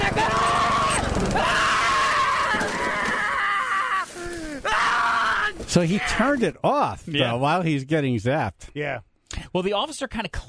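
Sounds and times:
man screaming: 0.0 - 6.4
speech: 5.7 - 10.4.

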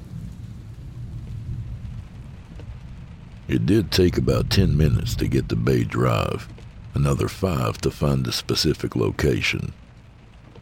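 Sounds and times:
heavy rain pouring: 0.0 - 10.6
speech: 3.5 - 9.8.

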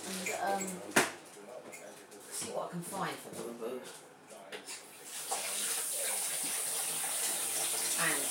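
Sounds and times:
speech: 0.4 - 1.0, 2.5 - 4.1
water running from a tap while hands are washed: 5.0 - 8.2.

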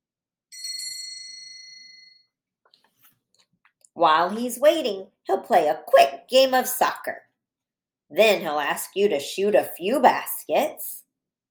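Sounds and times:
school bell ringing: 0.6 - 2.2
speech: 4.0 - 7.3, 8.1 - 11.0.

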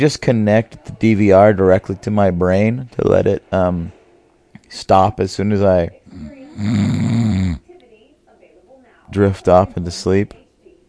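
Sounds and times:
speech: 0.0 - 4.0, 4.7 - 7.6, 9.1 - 10.4
person fake snoring: 6.1 - 7.7.

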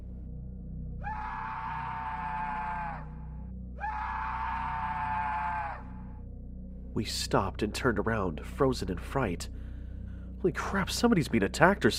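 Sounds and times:
distant human screams on a trail: 1.0 - 6.2
speech: 7.0 - 9.6, 10.4 - 11.9.

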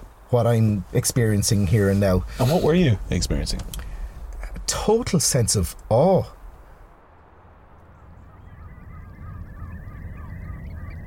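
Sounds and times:
steady low rumble of wind or surf: 0.0 - 11.0
speech: 0.3 - 3.9, 4.8 - 6.4
large flock of geese honking at a nature reserve at Ballinamona Beach: 7.9 - 11.0.

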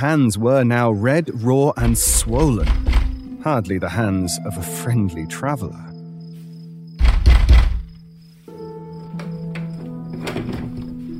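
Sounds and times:
speech: 0.0 - 5.9
fist pounding on a wooden door outdoors: 7.0 - 7.9.

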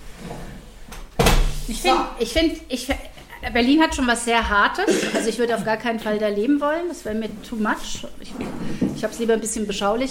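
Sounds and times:
lingering noise: 0.0 - 10.0
solid door thud: 1.2 - 1.6
speech: 1.7 - 10.0.

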